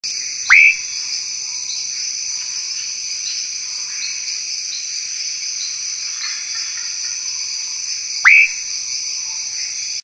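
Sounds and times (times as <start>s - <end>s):
Leptodactylus rhodomystax: 0.1s - 10.0s.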